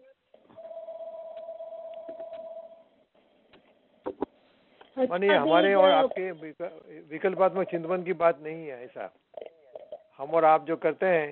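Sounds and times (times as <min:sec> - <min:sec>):
mobile phone ringing during a talk: 0:00.5 - 0:03.0, 0:05.3 - 0:06.3
speech: 0:05.0 - 0:09.2, 0:10.2 - 0:11.3.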